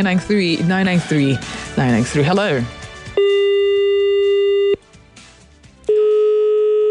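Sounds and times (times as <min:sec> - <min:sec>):
speech: 0:00.0 - 0:03.6
telephone busy signal on a call line: 0:03.2 - 0:04.8, 0:05.9 - 0:06.8.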